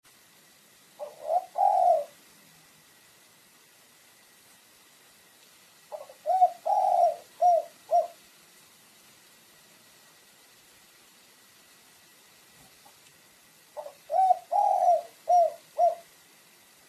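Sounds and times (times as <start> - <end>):
pigeon giving low hollow coos: 1.0 - 2.2, 5.9 - 8.2, 13.8 - 16.2.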